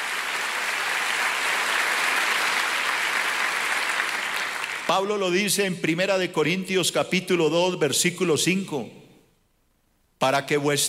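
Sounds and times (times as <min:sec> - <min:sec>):
large crowd applauding indoors: 0:00.0 - 0:04.9
speech: 0:04.9 - 0:09.1, 0:10.2 - 0:10.8.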